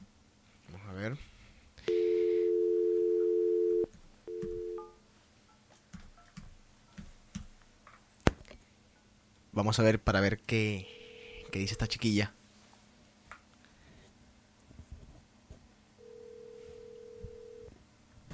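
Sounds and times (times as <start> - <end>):
telephone dial tone: 1.9 - 4.9, 16.0 - 17.7
telephone ringing tone on the line: 1.9 - 5.0, 10.8 - 12.0, 16.0 - 17.7
telephone keypad beeps as a number is dialed: 3.2 - 4.9
speech: 9.6 - 10.9, 11.5 - 12.4.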